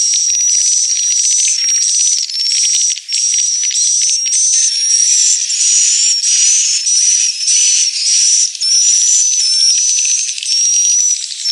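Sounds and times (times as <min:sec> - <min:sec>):
swiftlet chattering chorus from a swiftlet house lure sound: 0:00.1 - 0:11.5.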